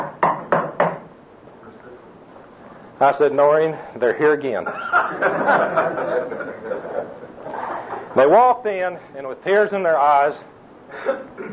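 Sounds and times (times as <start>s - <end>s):
knocking on a wooden door: 0.0s - 1.1s
speech: 3.0s - 7.2s, 8.2s - 11.5s
laughter: 4.6s - 8.2s.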